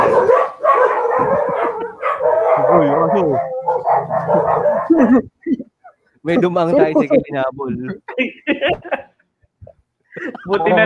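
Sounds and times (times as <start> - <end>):
dogs howling: 0.0 - 5.0
several dogs barking and yelping: 0.0 - 6.2
speech: 3.2 - 3.5, 4.3 - 5.3, 6.3 - 8.8, 10.4 - 10.8
laughter: 4.6 - 10.8.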